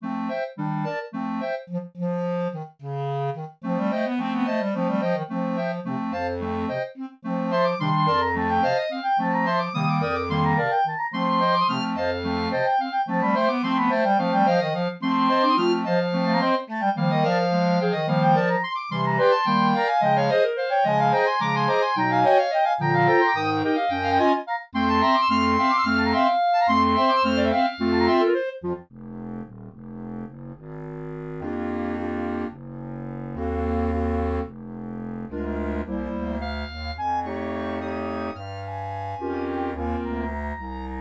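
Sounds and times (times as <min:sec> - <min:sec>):
harmonic waltz on contrabass clarinet with clarinet choir: 0:00.0 - 0:41.0
clarinet choir playing: 0:02.4 - 0:05.8, 0:06.4 - 0:28.8, 0:35.3 - 0:41.0.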